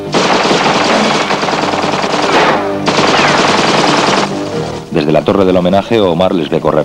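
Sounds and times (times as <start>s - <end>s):
rapid gunfire in a city under attack by armed nomads: 0.0s - 4.6s
speech: 5.3s - 6.8s.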